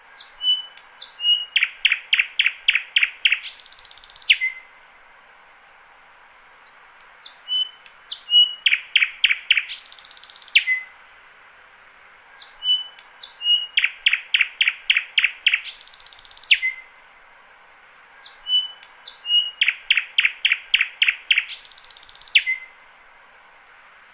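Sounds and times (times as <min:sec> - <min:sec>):
thrush nightingale singing: 0:00.0 - 0:04.8, 0:06.5 - 0:11.0, 0:12.4 - 0:17.0, 0:18.2 - 0:22.8.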